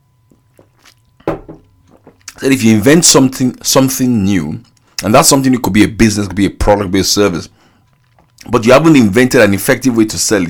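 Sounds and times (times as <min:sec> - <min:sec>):
person sipping water: 0:00.3 - 0:02.4, 0:07.6 - 0:08.5
wet gulp of water: 0:00.3 - 0:02.4, 0:07.8 - 0:08.6
speech: 0:02.4 - 0:07.6, 0:08.4 - 0:10.4.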